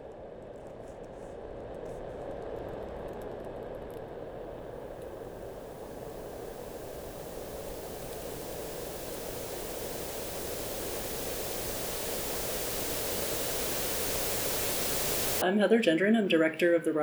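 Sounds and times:
white noise machines hissing in a library: 4.5s - 15.8s
speech: 15.4s - 17.0s.

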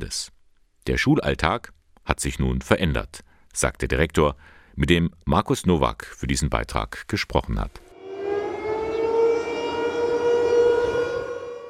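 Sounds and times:
speech: 0.0s - 7.8s
air raid siren in Ukraine wailing: 7.9s - 11.6s.

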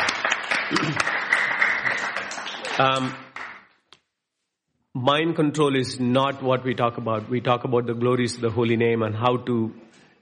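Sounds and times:
crowd applauding: 0.0s - 3.7s
speech: 0.7s - 1.2s, 2.8s - 3.2s, 5.0s - 9.9s.

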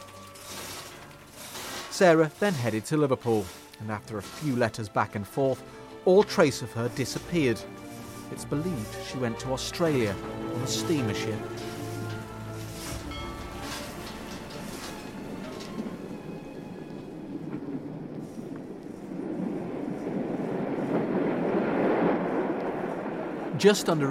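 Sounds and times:
steam train rumbling as it pulls into Church Stretton station: 0.0s - 24.1s
speech: 2.0s - 11.7s, 23.6s - 24.1s
faint high metallic tones: 12.8s - 15.7s.

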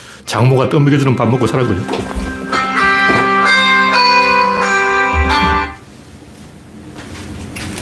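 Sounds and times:
speech: 0.3s - 2.4s
loud melodic phone ringtone: 1.2s - 5.8s.

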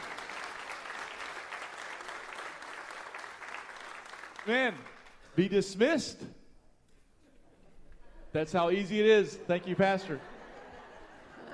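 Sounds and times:
church audience clapping in praise: 0.0s - 5.4s
speech: 4.4s - 6.4s, 8.4s - 10.3s
laughter: 9.5s - 11.5s.

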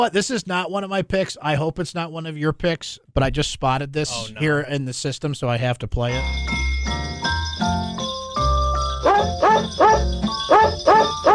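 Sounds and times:
speech: 0.0s - 6.7s
high bell-like tone: 6.1s - 11.3s
musical backing: 6.1s - 11.3s
dogs barking a Christmas carol melody: 9.0s - 11.3s.

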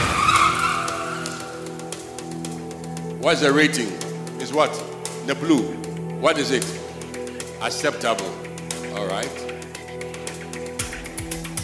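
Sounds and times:
car tires skidding in a crash test: 0.0s - 2.6s
speech: 3.2s - 6.8s, 7.6s - 8.4s, 9.0s - 9.5s.

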